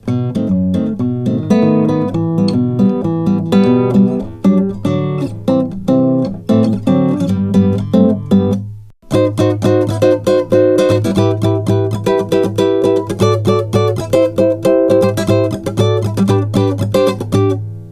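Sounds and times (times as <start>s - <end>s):
nylon string guitar: 0.0s - 17.9s.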